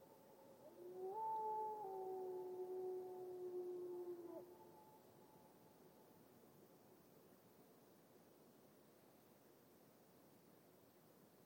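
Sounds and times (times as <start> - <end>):
lone grey wolf howling in a glacial valley in Washington: 0.6 - 4.9.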